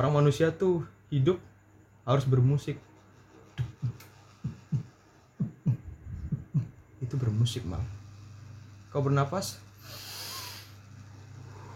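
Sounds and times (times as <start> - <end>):
speech: 0.0 - 1.5, 2.1 - 2.9, 7.1 - 8.0, 8.9 - 10.0
heartbeat: 3.5 - 6.8.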